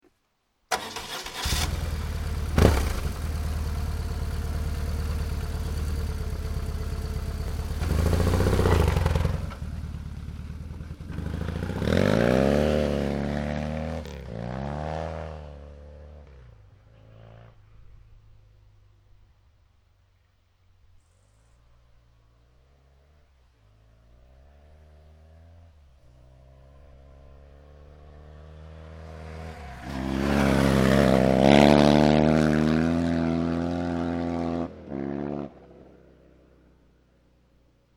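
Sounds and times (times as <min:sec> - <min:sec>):
BMW R1100GS sound: 0:00.7 - 0:18.1, 0:24.1 - 0:36.0.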